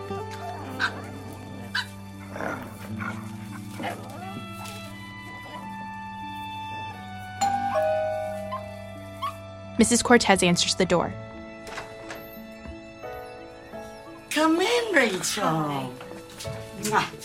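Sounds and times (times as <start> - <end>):
puppies playing with short yips and soft whimpers: 0.0 - 9.4
speech: 9.8 - 11.3, 15.3 - 17.2.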